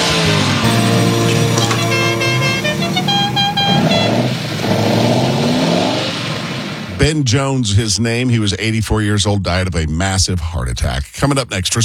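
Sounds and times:
bright horn-like toots: 0.0 - 7.2
powerful car engine revving inside a garage: 0.0 - 7.3
speech: 7.1 - 11.8.

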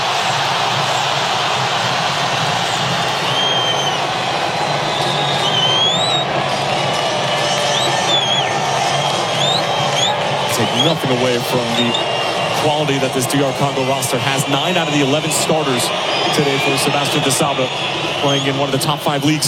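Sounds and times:
large football stadium crowd murmuring and roaring: 0.0 - 19.4
shrill whistles in a football stadium: 2.5 - 12.9, 14.8 - 18.9
speech: 11.0 - 19.4.

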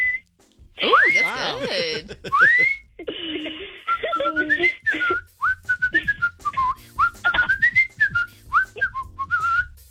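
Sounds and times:
person whistling a lively tune: 0.0 - 0.2, 2.3 - 2.9, 3.9 - 9.8
speech: 0.8 - 2.8
laughter: 0.8 - 5.1.

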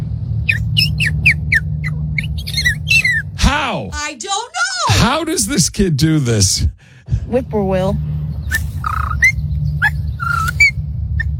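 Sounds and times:
steady low hum: 0.0 - 11.3
voice imitating a purple martin's call: 0.5 - 3.4, 8.5 - 11.3
speech: 5.0 - 8.1.

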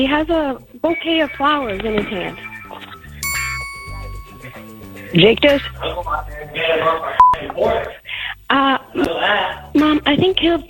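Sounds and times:
speech: 0.0 - 2.5, 5.1 - 10.6
bright doorbell chime: 1.3 - 4.9.

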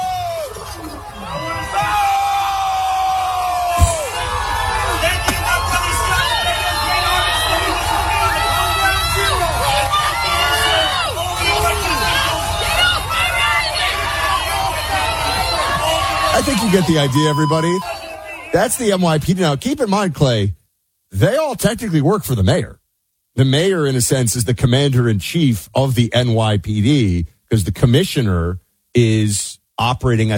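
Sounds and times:
many overlapping voices shouting and hollering: 0.0 - 18.6
large crowd booing and jeering a speaker off stage: 0.0 - 18.8
brief sharp knock: 3.8 - 4.1
speech: 16.4 - 22.8, 23.4 - 30.3.

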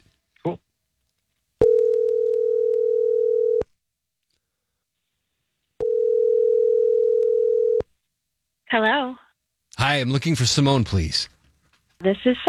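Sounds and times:
speech: 0.4 - 0.6, 9.8 - 11.4, 12.0 - 12.4
ringback tone from an outgoing phone call: 1.6 - 3.6, 5.8 - 7.8.

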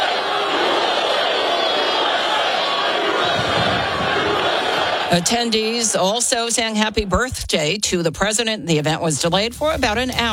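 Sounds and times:
large crowd chanting outdoors at the White House grounds: 0.0 - 7.3
speech: 5.1 - 10.3.

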